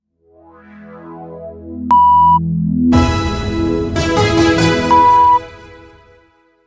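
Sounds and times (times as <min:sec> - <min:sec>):
sound bed music: 0:01.1 - 0:06.3
four-tone sound logo: 0:01.9 - 0:05.8.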